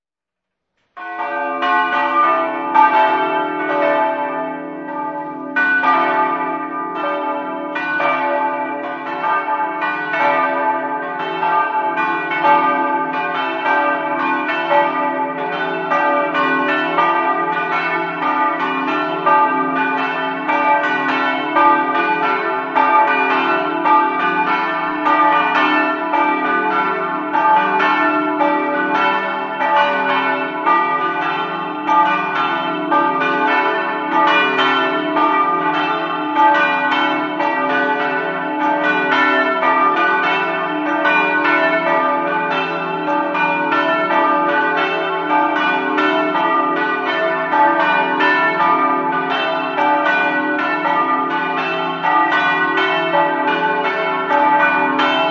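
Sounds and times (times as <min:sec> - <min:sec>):
bells ringing in Capriva: 0:01.0 - 0:55.2.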